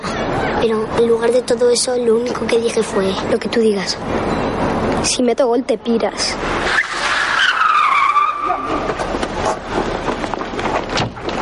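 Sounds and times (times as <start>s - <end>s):
rough noisy car engine and road rumble: 0.0s - 11.3s
speech: 0.6s - 6.8s
car skidding to a stop with tires screeching: 6.4s - 10.2s.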